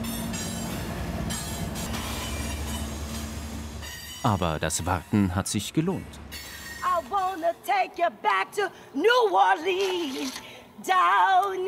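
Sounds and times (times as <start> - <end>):
long freight train passing on a riverside track in New Orleans: 0.0 - 7.7
speech: 4.2 - 6.5, 7.4 - 11.6.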